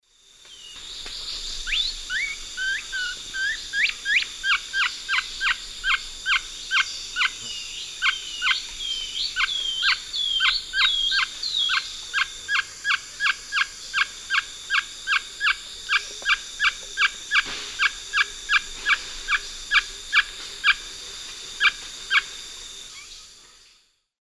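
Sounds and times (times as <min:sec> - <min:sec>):
Thamnomanes caesius alarm call in South America Eastern Lowlands: 0:01.7 - 0:20.8.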